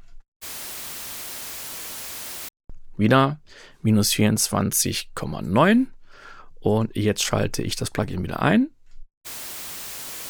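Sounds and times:
broadband test hiss played without the plugin: 0.4 - 2.5, 9.3 - 10.2
speech: 3.0 - 6.0, 6.6 - 9.4.

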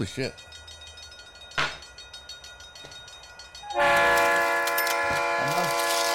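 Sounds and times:
speech: 0.0 - 0.6
rhythmic clacks of train sound effect: 0.0 - 6.1
train whistle-like burst sound effect: 3.7 - 6.1.

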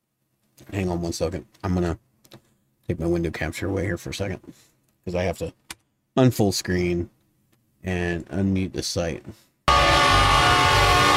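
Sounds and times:
speech: 0.7 - 2.1, 2.9 - 5.6, 6.2 - 7.2, 7.8 - 9.5
train horn: 9.7 - 11.1.

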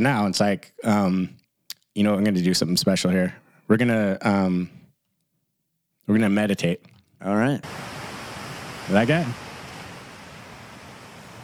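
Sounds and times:
speech: 0.0 - 1.4, 2.0 - 4.8, 6.1 - 8.0, 8.9 - 9.4
ocean surf on a beach: 7.6 - 11.4.

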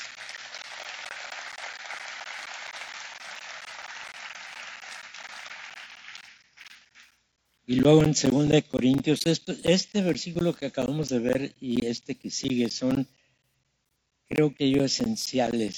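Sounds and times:
audience applause: 0.0 - 6.4
speech: 7.7 - 13.2, 14.3 - 15.7.

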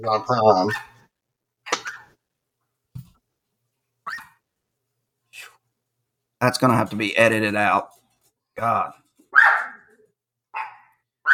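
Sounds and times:
speech: 0.0 - 0.9, 6.4 - 8.0, 8.6 - 9.5
dog barking sharply: 0.7 - 1.0, 4.0 - 4.4, 9.3 - 9.9, 10.5 - 11.3.

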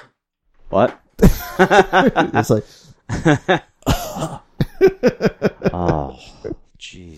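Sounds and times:
speech: 0.7 - 7.1
laughter: 1.2 - 6.7
person imitating coughing: 3.8 - 4.8.

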